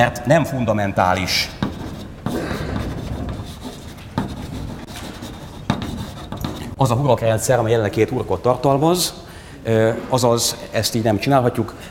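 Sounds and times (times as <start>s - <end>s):
speech: 0.0s - 1.6s, 6.8s - 11.8s
writing on a board: 1.3s - 6.8s.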